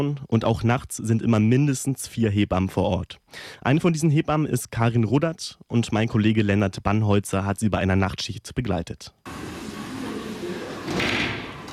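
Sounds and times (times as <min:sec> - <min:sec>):
speech: 0:00.0 - 0:09.5
sliding door to a hospital delivery room pushed open: 0:09.3 - 0:11.7.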